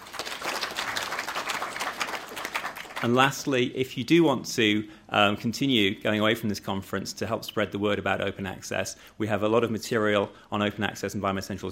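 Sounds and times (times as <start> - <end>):
audience applause at a conference: 0.0 - 3.2
speech: 3.0 - 11.6.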